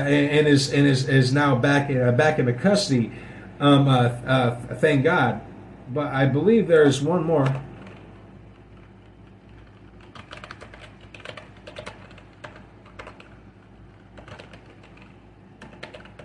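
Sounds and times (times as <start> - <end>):
speech: 0.0 - 7.6
steady low hum: 0.0 - 16.2
typing on a computer keyboard: 7.4 - 16.2.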